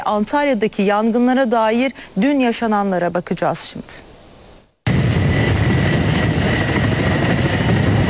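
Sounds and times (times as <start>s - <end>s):
speech: 0.0s - 4.1s
helicopter rotor and engine noise from aircraft flying over wildfires: 4.9s - 8.0s.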